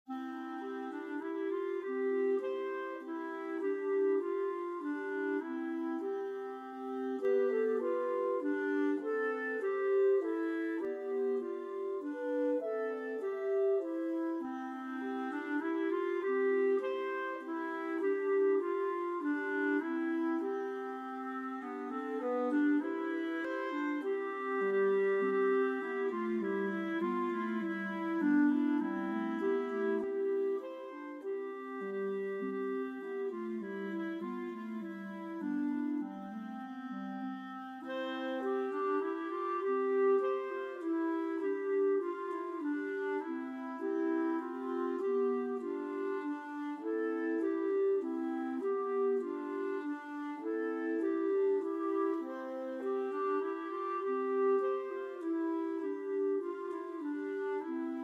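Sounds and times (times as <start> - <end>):
clarinet playing concert C major: 0.0 - 58.0.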